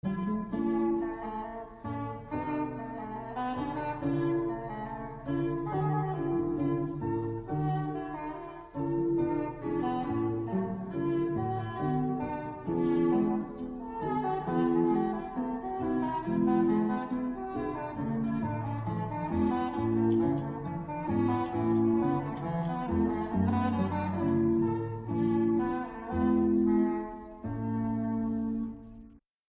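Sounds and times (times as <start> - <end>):
oboe da caccia: 0.0 - 29.2.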